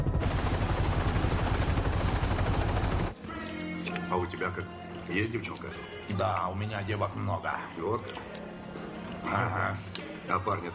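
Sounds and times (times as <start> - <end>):
helicopter flying: 0.0 - 3.2
speech: 4.1 - 8.6, 9.2 - 10.7.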